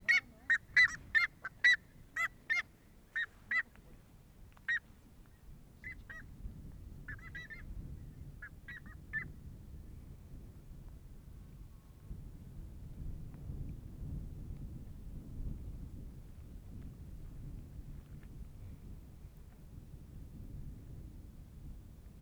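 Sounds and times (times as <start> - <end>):
buff-necked ibis calling in a rural setting: 0.0 - 3.7, 7.1 - 7.6
gentle wind in a rural setting: 0.0 - 22.2.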